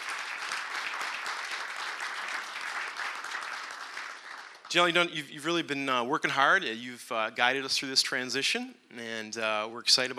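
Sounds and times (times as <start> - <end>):
audience applauding: 0.0 - 4.9
speech: 4.7 - 10.1.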